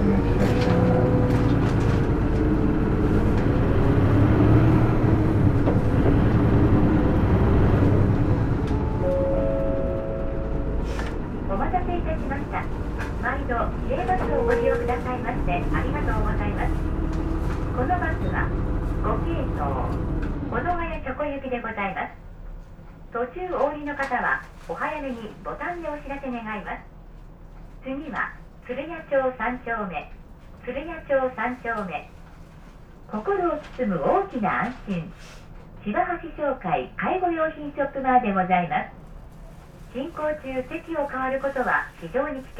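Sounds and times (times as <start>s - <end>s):
bus departing a stop with heavy engine rumble: 0.0s - 42.5s
voice announcing the departure: 11.5s - 16.8s
brief tones: 14.1s - 15.5s
speech: 24.0s - 26.8s, 27.8s - 32.2s, 33.1s - 39.0s, 39.9s - 42.5s.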